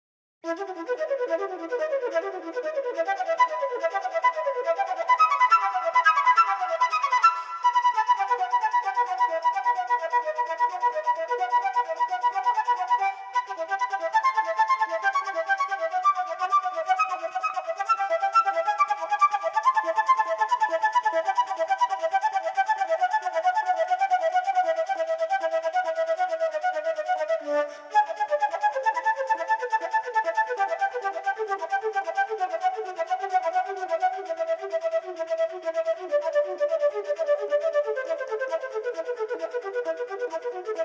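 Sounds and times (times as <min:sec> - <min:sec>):
unaccompanied flute playing a violin sonata prelude: 0:00.4 - 0:40.8.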